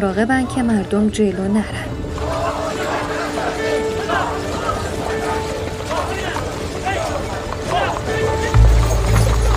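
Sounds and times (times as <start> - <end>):
speech: 0.0 - 2.3
faint murmuring voices: 0.0 - 9.5
horse-drawn carriage wooden wheels rattling and creaking: 1.7 - 9.5
horse hooves clip-clopping: 2.0 - 9.5.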